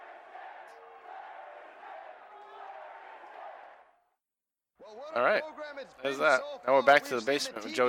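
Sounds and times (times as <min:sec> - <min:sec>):
big arena wrestling crowd chanting in unison: 0:00.0 - 0:04.0
speech: 0:04.9 - 0:07.8.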